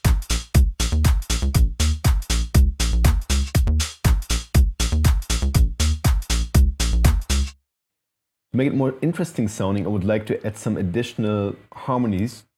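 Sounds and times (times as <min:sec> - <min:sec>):
simple electronic beat with kick and hi-hat: 0:00.0 - 0:07.6
speech: 0:08.6 - 0:12.5.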